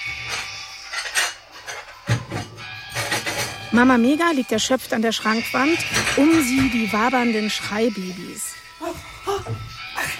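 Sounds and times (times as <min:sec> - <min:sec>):
dishes and cutlery clattering in a video game: 0:00.0 - 0:07.3
speech: 0:03.7 - 0:09.6.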